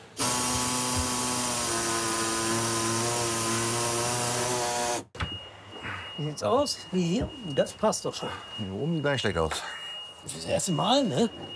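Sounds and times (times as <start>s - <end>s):
power saw cutting through sheet metal to trim a cabinet section: 0.0s - 5.1s
speech: 6.2s - 11.5s.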